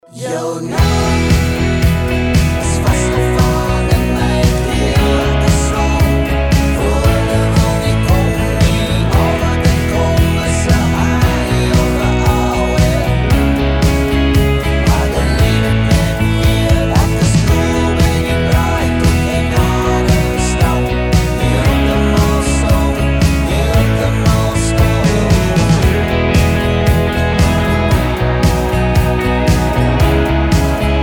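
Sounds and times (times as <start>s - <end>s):
Afrikaans pop song: 0.0s - 31.0s.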